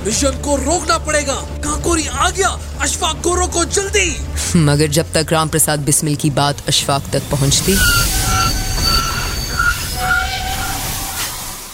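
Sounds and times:
speech: 0.0 - 8.1
low rumble of rolling train carriages: 5.8 - 11.7
train wheels squealing as it brakes after the emergency chain is pulled: 7.3 - 11.7.

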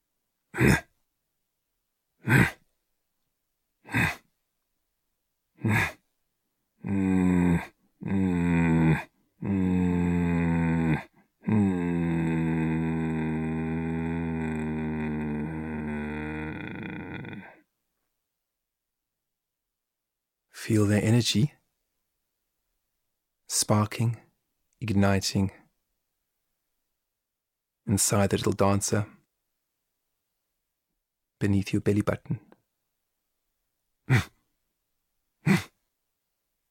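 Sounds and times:
voice imitating deep rasping leopard growls: 0.5 - 0.9, 2.2 - 2.6, 3.8 - 4.2, 5.6 - 6.0, 6.8 - 17.6, 34.1 - 34.4, 35.4 - 35.8
speech: 0.6 - 0.9, 20.7 - 21.6, 23.7 - 24.2, 24.8 - 25.6, 27.9 - 29.2, 31.4 - 32.5, 34.1 - 34.4
voice imitating leopard coughing chuffs: 0.6 - 0.9, 2.2 - 2.6, 3.9 - 4.2, 5.6 - 6.0, 34.1 - 34.4, 35.4 - 35.8.

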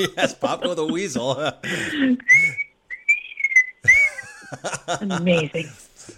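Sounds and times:
laughter: 0.0 - 2.6, 3.8 - 6.1
speech: 0.0 - 2.7, 4.5 - 6.1
person whistling a short melodic tune: 2.3 - 4.2.

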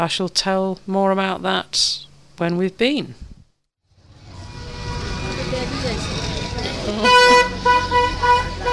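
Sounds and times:
speech: 0.0 - 3.3
motorbike engines rumbling on a busy street in Kathmandu: 3.9 - 8.7
vehicle horns honking on a busy street in Kathmandu: 4.2 - 8.7.

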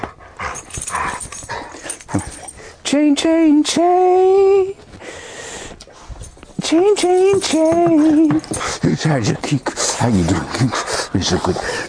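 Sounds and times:
yellow dog whimpering and yipping: 0.6 - 2.6
speech: 2.9 - 4.8, 6.7 - 11.8.

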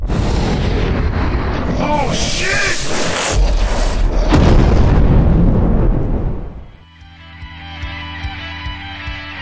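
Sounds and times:
heavy gunfire booms: 0.0 - 6.8.

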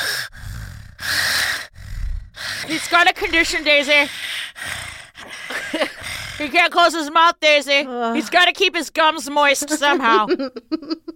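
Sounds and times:
voice imitating loud mouth breathing: 0.0 - 6.5
speech: 2.7 - 4.3, 6.4 - 11.1.

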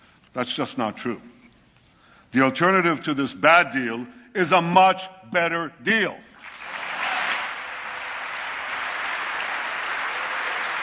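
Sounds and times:
speech: 0.4 - 1.3, 2.3 - 6.3
large audience applauding in a legislative chamber: 6.4 - 10.8.

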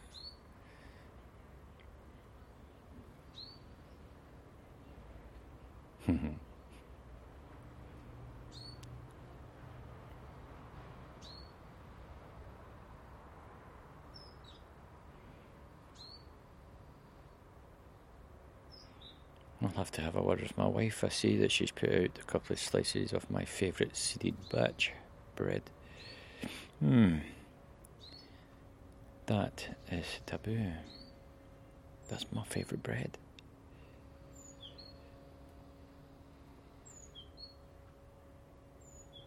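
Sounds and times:
blackbird calling in garden with short high chirping calls: 0.0 - 0.9, 2.4 - 4.1, 8.5 - 8.9, 11.2 - 11.6, 14.1 - 14.7, 15.9 - 17.5, 18.7 - 19.4, 25.8 - 26.4, 27.9 - 28.5, 29.8 - 31.3, 33.8 - 35.8, 36.7 - 37.7, 38.8 - 39.2
steady outdoor hum: 0.0 - 39.2
speech: 6.1 - 6.5, 19.6 - 27.4, 29.3 - 31.0, 32.1 - 33.2.

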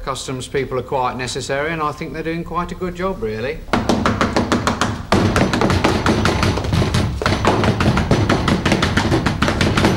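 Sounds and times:
speech: 0.1 - 4.2
loud insistent knocking on a door: 3.7 - 9.9.

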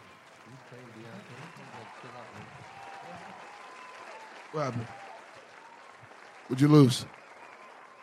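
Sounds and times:
crowd applause: 0.0 - 8.0
speech: 0.7 - 3.6, 4.5 - 5.1, 6.5 - 7.2.

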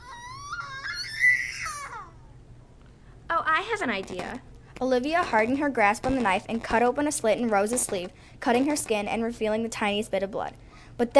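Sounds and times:
woman wailing: 0.0 - 2.3
speech: 3.6 - 11.1.

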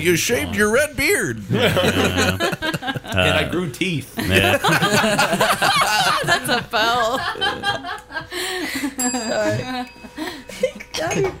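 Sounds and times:
speech: 0.0 - 10.4, 11.0 - 11.3
laughter: 1.4 - 11.3
single bright bell ding: 9.0 - 10.7.

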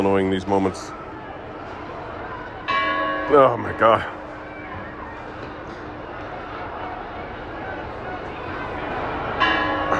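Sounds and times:
speech: 0.0 - 1.0, 3.3 - 4.2
loud continuous crowd roar: 0.0 - 9.9
large bell clanging as people climb it and hit it: 2.6 - 4.5, 9.3 - 9.9.

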